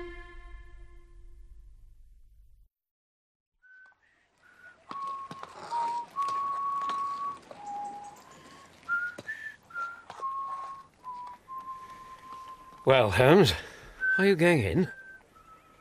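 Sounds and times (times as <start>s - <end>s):
cab driver whistling a wavering tune impatiently: 3.6s - 12.9s, 13.6s - 15.7s
speech: 12.9s - 15.0s.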